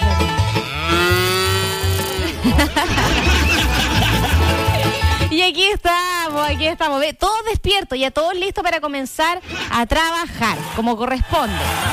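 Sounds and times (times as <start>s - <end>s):
cow mooing: 0.5s - 2.4s
laughter: 2.0s - 5.3s
speech: 5.5s - 11.9s.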